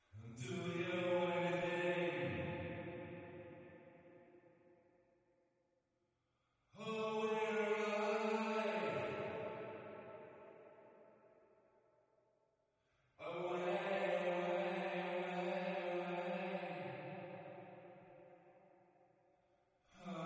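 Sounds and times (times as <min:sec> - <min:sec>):
vocals with reverb: 0:00.0 - 0:04.7, 0:06.7 - 0:11.4, 0:12.8 - 0:19.2, 0:19.9 - 0:20.2.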